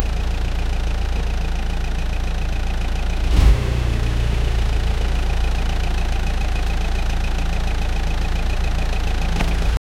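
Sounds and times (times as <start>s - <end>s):
car starting with starter: 0.0s - 9.8s.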